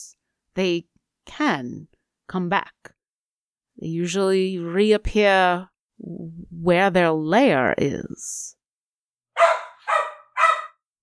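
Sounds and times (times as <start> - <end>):
speech: 0.0 - 3.0, 3.8 - 8.6
dog barking: 9.4 - 10.8.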